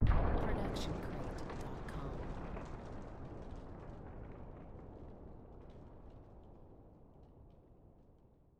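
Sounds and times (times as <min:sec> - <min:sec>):
explosion blast: 0:00.0 - 0:05.9.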